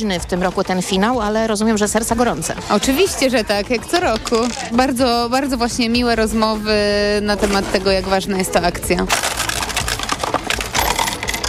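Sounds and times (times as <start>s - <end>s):
speech: 0.0s - 9.5s
coins dropping into a charity collection box: 4.0s - 4.8s, 9.1s - 11.4s.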